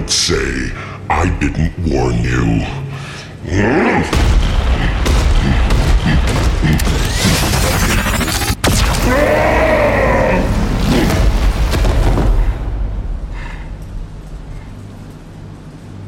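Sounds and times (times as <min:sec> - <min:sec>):
speech: 0:00.1 - 0:02.8, 0:03.4 - 0:04.6, 0:05.4 - 0:08.4, 0:09.0 - 0:10.6
sci-fi blast from a coma cannon: 0:04.1 - 0:14.8.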